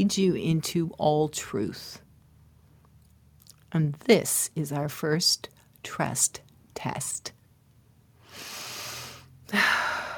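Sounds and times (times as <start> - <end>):
speech: 0.0 - 2.0, 3.7 - 7.4, 9.5 - 9.8
deep human breath in and out: 8.2 - 10.1.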